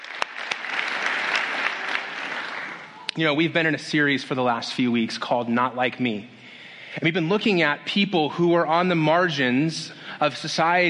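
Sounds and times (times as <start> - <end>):
steady applause from a sizable audience: 0.0 - 3.1
sharp loud claps: 0.0 - 3.2
speech: 3.2 - 10.8.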